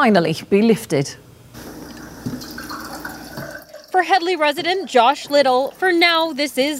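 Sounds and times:
speech: 0:00.0 - 0:01.7, 0:04.0 - 0:06.7
drinking water pouring from a bottle in Headley: 0:01.6 - 0:06.7.

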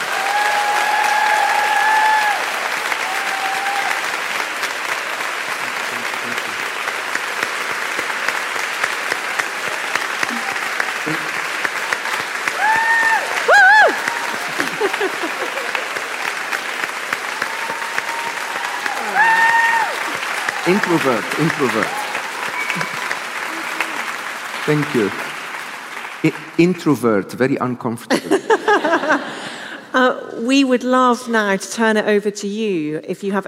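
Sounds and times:
faint voices and whoops: 0:00.0 - 0:04.0, 0:12.4 - 0:16.0, 0:17.3 - 0:20.9
audience applause: 0:00.0 - 0:27.2, 0:28.3 - 0:29.8
laughter: 0:10.3 - 0:11.6, 0:13.5 - 0:16.5, 0:20.7 - 0:21.9, 0:28.1 - 0:29.9
speech: 0:20.9 - 0:22.1, 0:24.7 - 0:25.2, 0:26.2 - 0:29.4, 0:30.0 - 0:33.4.

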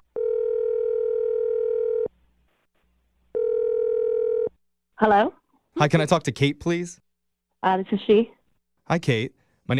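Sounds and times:
telephone ringback tone: 0:00.2 - 0:02.1, 0:03.4 - 0:04.5
speech: 0:05.0 - 0:09.7.

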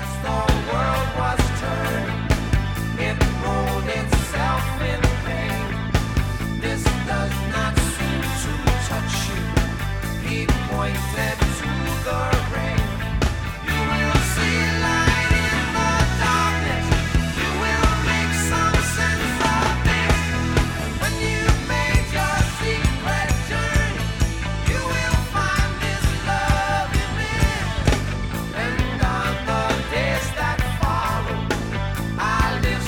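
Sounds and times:
rock song with prominent guitar work and drums: 0:00.0 - 0:32.8.

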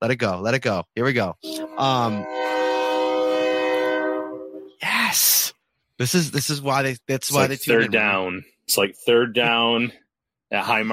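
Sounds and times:
speech: 0:00.0 - 0:02.6, 0:05.1 - 0:10.9
loud train horn blaring: 0:01.4 - 0:04.8.

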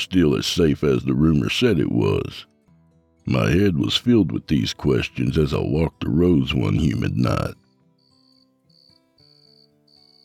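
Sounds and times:
speech: 0:00.0 - 0:02.5, 0:03.2 - 0:07.6
crickets chirping at night: 0:07.3 - 0:10.2.

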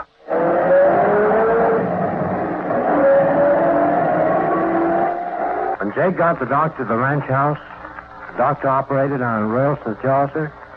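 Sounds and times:
car engine as the car drives off: 0:00.3 - 0:05.8
speech: 0:06.0 - 0:07.8, 0:08.4 - 0:10.6.

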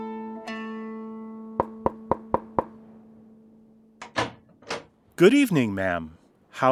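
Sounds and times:
knocking by hand on a wooden hut door: 0:01.6 - 0:02.8
speech: 0:05.2 - 0:06.7.

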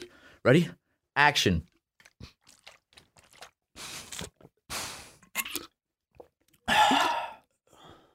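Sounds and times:
speech: 0:00.4 - 0:02.4
person slurping and gulping water: 0:01.6 - 0:07.5.

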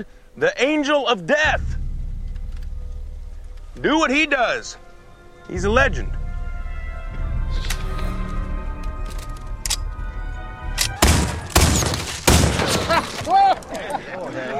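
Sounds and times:
speech: 0:00.0 - 0:01.8, 0:03.8 - 0:04.8, 0:05.5 - 0:06.2
steady sustained background: 0:00.0 - 0:13.2
gunfire shots in a film scene: 0:10.8 - 0:13.3
laughter: 0:12.7 - 0:14.5.

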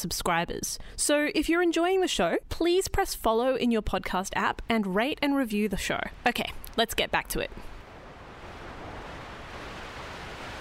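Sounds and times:
speech: 0:00.0 - 0:07.7
wind rushing at a wind farm: 0:07.6 - 0:10.5.

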